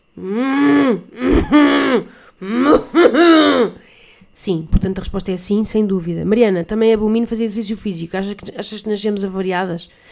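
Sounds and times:
person imitating a cow with rough cough-like moos: 0.1 - 3.8
speech: 0.2 - 2.6, 4.5 - 10.1.

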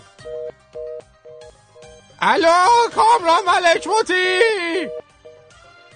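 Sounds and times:
telephone busy tone: 0.2 - 2.0, 3.7 - 5.6
speech: 2.2 - 5.0.

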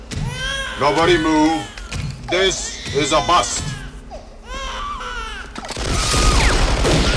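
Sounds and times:
wailing baby-like cry: 0.2 - 7.1
speech: 0.8 - 1.7, 2.3 - 3.7
rapid gunfire with heavy low booms in an action film scene: 5.7 - 7.1.

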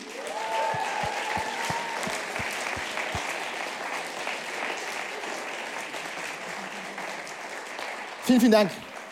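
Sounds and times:
whistles and cheers from the crowd: 0.0 - 3.3
audience applause: 0.0 - 9.0
speech: 8.3 - 8.9.

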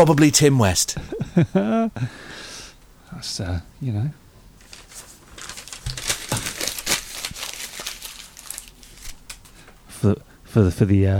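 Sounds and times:
speech: 0.0 - 2.5, 3.1 - 4.2, 10.0 - 11.1
paper being crumpled into a ball: 4.6 - 9.9.

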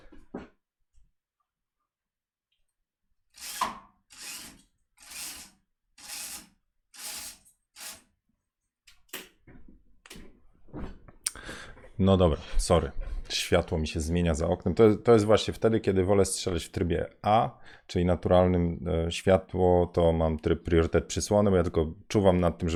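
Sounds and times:
window blind being adjusted to cover the window: 3.3 - 8.2
speech: 12.0 - 22.7.

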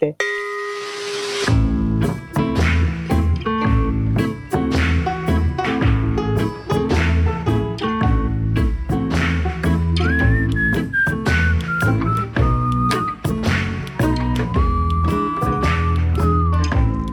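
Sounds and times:
speech: 0.0 - 0.3
loud backing music with a strong beat: 1.5 - 17.1
person whistling a sliding melody: 9.9 - 17.1.

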